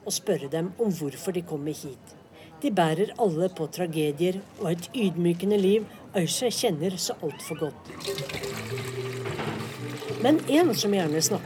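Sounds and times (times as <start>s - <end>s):
speech: 0.1s - 9.0s, 10.2s - 11.4s
water pouring into a water jug: 7.8s - 11.4s.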